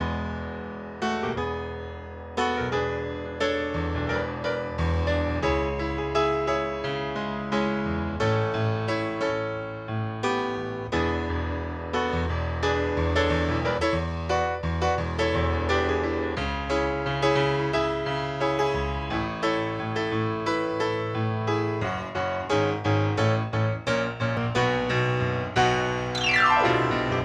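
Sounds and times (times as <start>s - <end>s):
piano with EQ: 0.0s - 27.2s.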